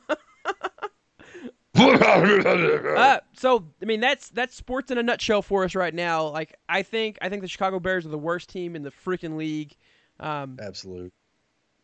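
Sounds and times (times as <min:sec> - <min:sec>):
person coughing: 0:01.3 - 0:03.0
speech: 0:02.2 - 0:11.2.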